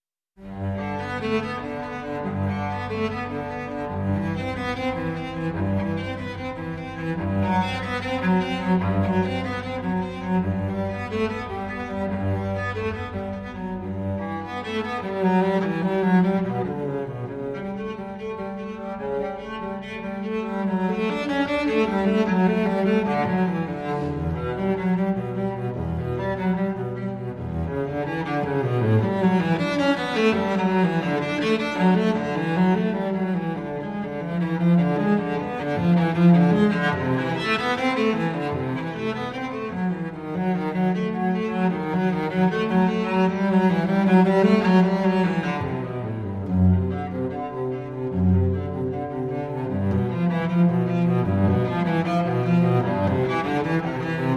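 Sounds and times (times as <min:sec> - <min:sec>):
solo cello piece in G major: 0:00.2 - 0:54.3.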